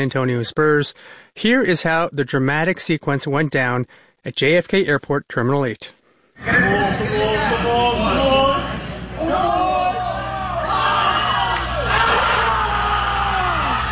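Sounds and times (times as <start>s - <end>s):
speech: 0.0s - 8.2s
packed crowd of basketball fans screaming and cheering in an airport terminal after a comeback win: 8.0s - 13.9s.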